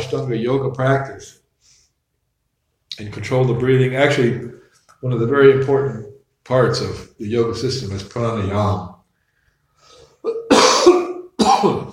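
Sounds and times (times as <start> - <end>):
speech: 0.1 - 1.4, 3.0 - 8.9, 11.6 - 11.9
man coughing harshly during a talk: 10.2 - 11.9.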